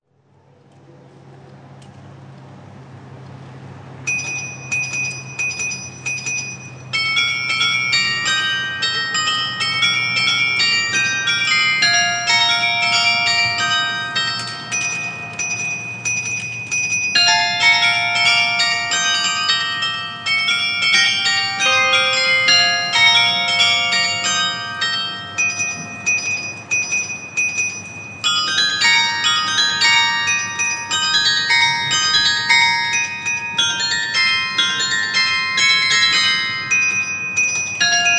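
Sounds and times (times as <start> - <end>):
carillon bells: 4.1 - 38.1.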